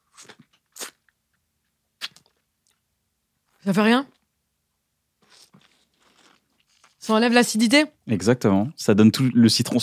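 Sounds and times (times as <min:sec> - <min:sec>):
crisp crunching bites into a lemon: 0:00.0 - 0:01.1, 0:05.2 - 0:07.0
faint chewing of lemon: 0:00.0 - 0:02.9, 0:05.2 - 0:07.1
speech: 0:03.6 - 0:04.2, 0:07.1 - 0:09.8.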